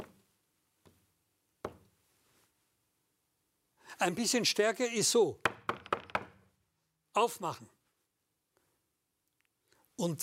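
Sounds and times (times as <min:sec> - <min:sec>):
speech: 0:04.0 - 0:05.5, 0:07.2 - 0:07.8, 0:10.0 - 0:10.2
soft polite knocking on a door: 0:05.4 - 0:06.4.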